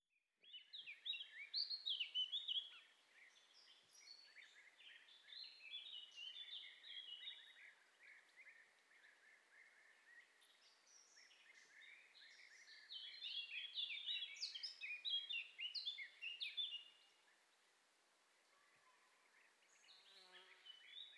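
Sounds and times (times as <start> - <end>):
birds at a forest edge by a very old quarry lake: 0.4 - 21.1.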